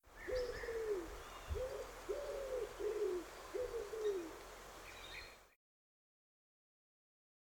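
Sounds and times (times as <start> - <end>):
bird cooing: 0.2 - 4.4.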